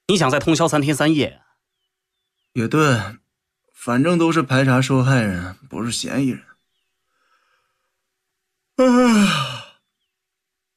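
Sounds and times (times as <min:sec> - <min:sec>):
speech: 0:00.1 - 0:01.4, 0:02.6 - 0:03.2, 0:03.8 - 0:06.5, 0:08.8 - 0:09.6
person yawning: 0:08.8 - 0:09.8.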